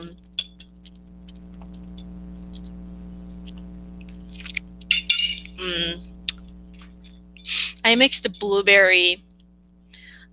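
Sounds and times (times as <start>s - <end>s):
steady low hum: 0.0s - 10.3s
glass clinking: 4.9s - 5.5s
speech: 5.6s - 6.1s, 7.9s - 9.3s.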